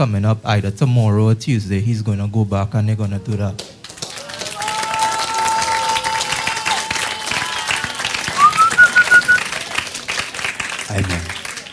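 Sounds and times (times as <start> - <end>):
speech: 0.0 - 3.8
audience clapping: 3.0 - 11.7
high whistle-like tone: 8.4 - 9.4.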